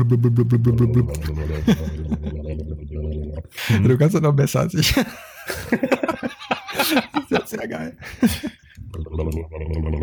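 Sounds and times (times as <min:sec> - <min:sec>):
speech: 0:00.0 - 0:02.2, 0:03.4 - 0:10.0
voice imitating V8 engine burble: 0:00.0 - 0:03.5, 0:08.9 - 0:10.0
breathy rougher vocal noises: 0:00.0 - 0:04.0, 0:08.0 - 0:10.0
laughter: 0:01.2 - 0:02.7, 0:04.9 - 0:09.5.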